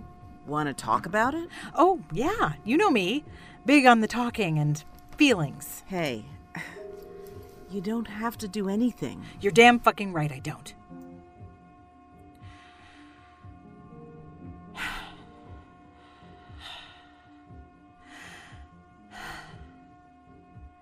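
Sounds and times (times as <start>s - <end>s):
low steady hum: 0.0s - 20.8s
speech: 0.5s - 6.8s, 7.7s - 10.8s
heavy rasping breathing: 12.4s - 13.6s, 14.7s - 19.8s.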